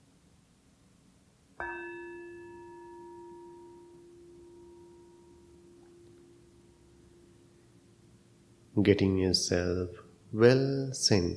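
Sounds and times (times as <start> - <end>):
bell ringing: 1.6 - 9.2
speech: 8.8 - 11.3.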